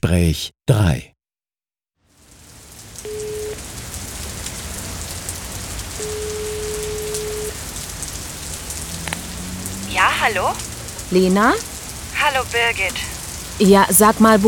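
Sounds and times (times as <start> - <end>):
speech: 0.0 - 1.1, 10.3 - 14.4
dense rain pattering on a hard surface: 2.0 - 14.4
plain electronic tones: 6.0 - 7.6.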